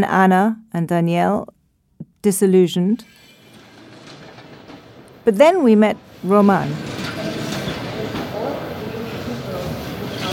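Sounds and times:
speech: 0.0 - 1.6, 2.2 - 3.3, 5.2 - 7.0
train pulling in at a platform of a busy train station: 3.0 - 10.3.

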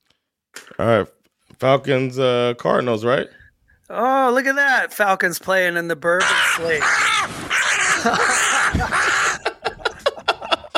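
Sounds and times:
speech: 0.8 - 7.4, 8.0 - 8.4
several crows cawing and squawking while fighting: 6.2 - 9.7
laughter: 7.6 - 10.7.

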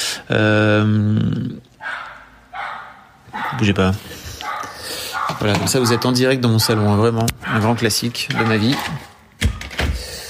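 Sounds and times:
speech: 0.3 - 2.0, 3.3 - 4.2, 5.3 - 9.1
neighbor's dog barking: 1.8 - 3.8, 4.4 - 9.2.

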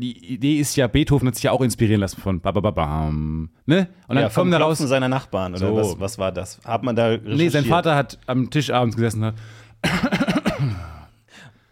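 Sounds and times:
speech: 0.0 - 10.8
person coughing fit with rough hacks: 9.8 - 11.2.

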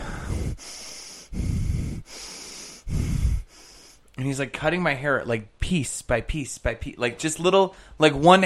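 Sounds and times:
man imitating heavy labored breathing: 0.0 - 4.1
speech: 4.2 - 8.4.

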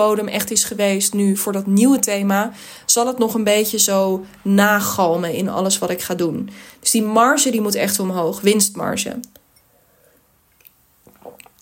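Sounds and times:
speech: 0.0 - 9.4
faint mouth sounds: 9.4 - 11.6
sipping tea from a cup: 9.4 - 11.6
soft swallow: 9.9 - 11.6
wet slurp of tea: 10.5 - 11.6.

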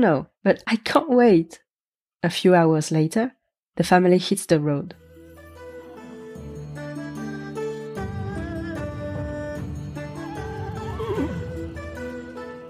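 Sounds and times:
speech: 0.0 - 1.6, 2.2 - 5.0
sustained musical backdrop: 5.0 - 12.6
horse being ridden on the road whinnying: 10.0 - 12.1.

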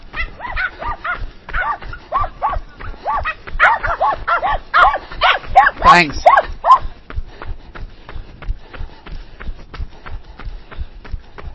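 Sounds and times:
several dogs barking and yipping: 0.0 - 7.0
speech: 5.9 - 6.3.

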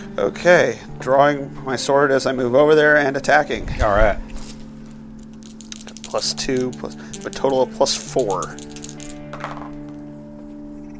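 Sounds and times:
steady hum: 0.0 - 10.9
speech: 0.2 - 4.3, 6.1 - 8.7
ten-sided and six-sided dice rolled in a tabletop roleplaying game: 5.2 - 10.0.

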